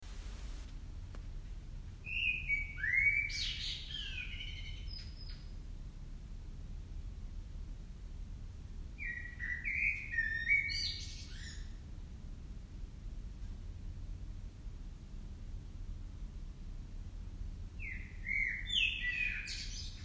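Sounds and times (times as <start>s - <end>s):
low background rumble: 0.0s - 20.0s
common blackbird Turdus merula song: 2.0s - 5.6s, 9.0s - 11.8s, 17.8s - 20.0s.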